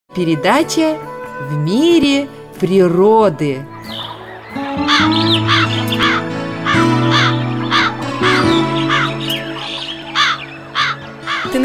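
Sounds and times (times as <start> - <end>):
speech: 0.2 - 4.0, 4.8 - 7.2
flock of crows, rooks and jackdaws cawing: 3.7 - 11.6.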